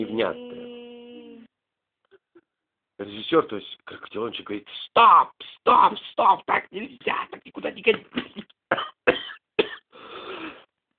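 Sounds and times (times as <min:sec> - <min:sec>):
speech: 0:00.0 - 0:00.5, 0:03.0 - 0:09.0
person coughing angrily: 0:08.2 - 0:10.6.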